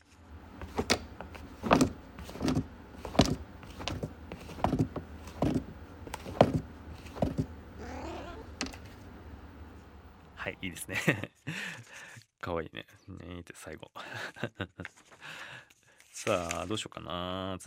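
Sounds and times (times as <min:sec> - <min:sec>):
cat scratching and raking litter in its litter box: 0:00.0 - 0:09.1
speech: 0:10.6 - 0:11.6, 0:12.4 - 0:15.1, 0:16.2 - 0:17.6
laughter: 0:10.8 - 0:11.9, 0:14.0 - 0:14.9.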